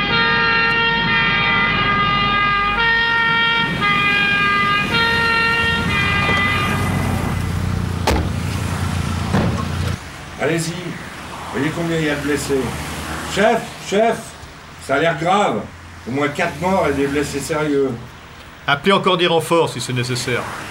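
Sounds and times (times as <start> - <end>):
two-tone siren of ambulances arriving at a road accident scene: 0.0 - 7.8
rumbling traffic: 0.0 - 20.6
sharp knock: 8.0 - 8.4
speech: 10.5 - 10.8, 11.7 - 14.3, 14.9 - 18.1, 18.7 - 20.6.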